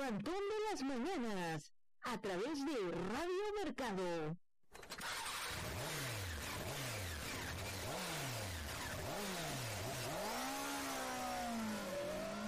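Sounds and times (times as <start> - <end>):
speech: 0.1 - 4.4
motorcycle engine revving through gear shifts: 5.0 - 12.4.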